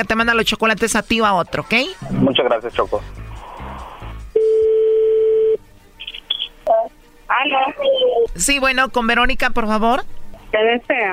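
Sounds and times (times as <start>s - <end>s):
speech: 0.0s - 3.2s, 7.4s - 11.1s
short high telephone dialing tones: 4.3s - 6.9s.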